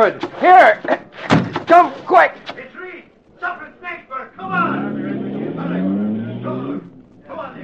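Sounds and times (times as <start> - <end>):
speech: 0.0 - 2.7
car engine revving and pulling away: 4.4 - 7.2.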